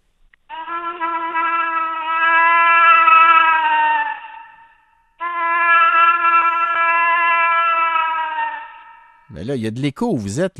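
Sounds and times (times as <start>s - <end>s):
man imitating a moose call inside a pickup truck: 0.5s - 4.5s, 5.2s - 9.0s
speech: 9.5s - 10.5s.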